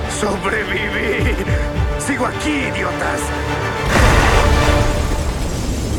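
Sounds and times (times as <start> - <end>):
speech: 0.2 - 3.7
powerful explosion at night: 3.8 - 5.9.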